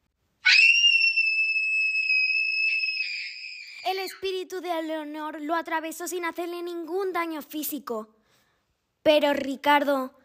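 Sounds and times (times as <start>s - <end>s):
ghostly woman screaming: 0.4s - 4.2s
speech: 3.9s - 8.2s, 9.0s - 10.2s.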